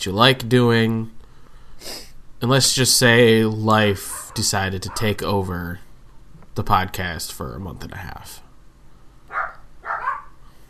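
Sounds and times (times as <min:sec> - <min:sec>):
speech: 0:00.0 - 0:01.2, 0:01.8 - 0:05.9, 0:06.6 - 0:08.4
dog barks: 0:04.1 - 0:05.2, 0:09.3 - 0:10.4.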